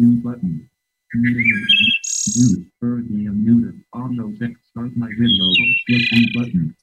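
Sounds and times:
people talking: 0:00.0 - 0:06.8
wood thrush singing fluty song phrases: 0:01.1 - 0:02.6, 0:05.0 - 0:06.5.

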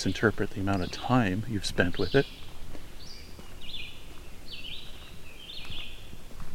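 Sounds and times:
speech: 0:00.0 - 0:02.5
red-eyed vireo singing short high warbled phrases: 0:00.0 - 0:06.3.

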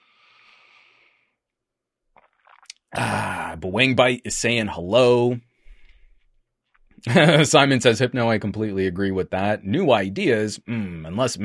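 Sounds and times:
person sipping water: 0:02.1 - 0:03.4
person gulping and swallowing water: 0:02.2 - 0:03.3
speech: 0:02.9 - 0:05.5, 0:07.0 - 0:11.4.

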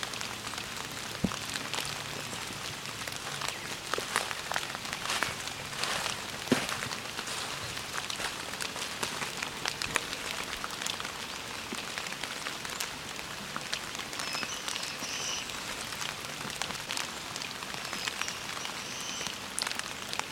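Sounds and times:
steady rain pattering on a surface: 0:00.0 - 0:20.3
faint high bird calls: 0:14.1 - 0:15.6, 0:17.8 - 0:19.4.

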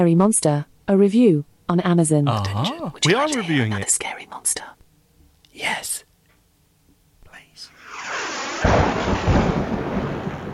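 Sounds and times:
speech: 0:00.0 - 0:04.8, 0:05.6 - 0:06.1
thunder rumble sound effect: 0:07.8 - 0:10.5.

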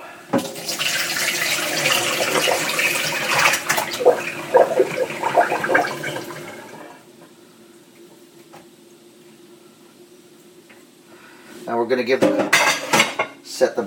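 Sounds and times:
water poured from a bowl into a colander: 0:00.4 - 0:06.9
speech: 0:11.9 - 0:12.5, 0:13.6 - 0:13.8.

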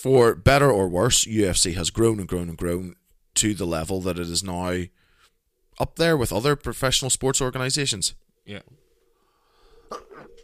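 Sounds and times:
speech: 0:00.0 - 0:05.0, 0:05.8 - 0:08.8, 0:09.9 - 0:10.3
person sneezing: 0:09.9 - 0:10.4.

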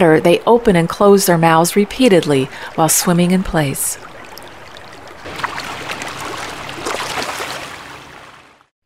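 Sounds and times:
speech: 0:00.0 - 0:04.1
swift river water tumbling over rocks: 0:04.0 - 0:08.7.

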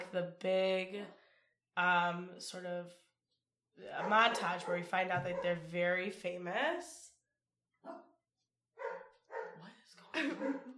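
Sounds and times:
speech: 0:00.1 - 0:01.2, 0:01.8 - 0:03.0, 0:03.8 - 0:07.1, 0:07.8 - 0:08.1, 0:10.2 - 0:10.7
several dogs barking: 0:04.0 - 0:05.6, 0:08.8 - 0:09.6, 0:10.2 - 0:10.7.

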